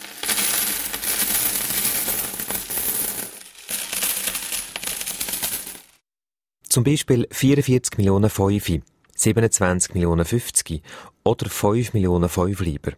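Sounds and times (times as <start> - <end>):
metal coins pouring and clinking: 0.0 - 6.0
speech: 6.8 - 12.9.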